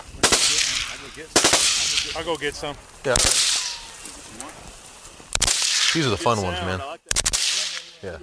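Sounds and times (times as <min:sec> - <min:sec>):
automatic rifle fire from AK-47s and M16s shooting at pumpkins in a field: 0:00.2 - 0:02.3, 0:03.1 - 0:04.0, 0:05.3 - 0:06.1, 0:07.1 - 0:08.0
speech: 0:02.2 - 0:03.3, 0:05.9 - 0:07.0, 0:08.0 - 0:08.2.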